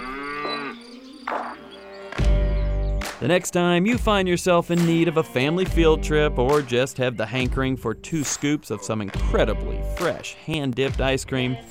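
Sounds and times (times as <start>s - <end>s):
cow mooing: 0.0s - 0.9s
speech: 3.2s - 11.6s.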